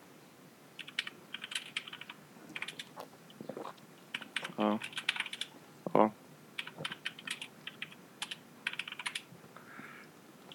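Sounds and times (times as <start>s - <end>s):
typing on a computer keyboard: 0.8s - 2.9s, 4.1s - 5.5s, 6.6s - 9.3s
speech: 4.6s - 5.1s, 6.0s - 6.2s.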